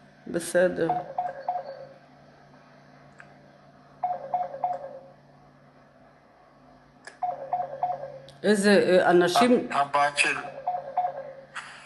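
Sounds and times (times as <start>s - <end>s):
low steady hum: 0.0s - 11.8s
speech: 0.3s - 1.2s, 8.4s - 10.5s
phone ringtone beeping with an incoming call: 0.9s - 1.9s, 4.0s - 5.1s, 7.2s - 8.2s, 10.4s - 11.4s.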